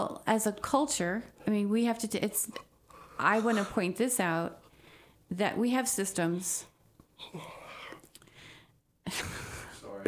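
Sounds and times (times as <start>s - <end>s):
speech: 0.0s - 4.6s, 5.3s - 7.6s
loud breathy yawn: 3.2s - 3.8s.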